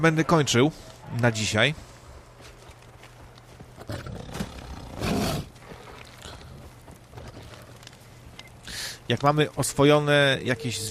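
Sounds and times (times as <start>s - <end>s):
speech: 0.0s - 1.9s, 9.1s - 10.8s
tiger roaring and growling at another tiger: 3.9s - 5.5s.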